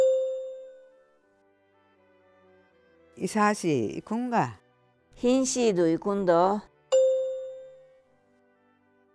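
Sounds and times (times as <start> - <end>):
chime ringing: 0.0 - 0.8, 7.0 - 7.8
speech: 3.2 - 4.6, 5.2 - 6.7.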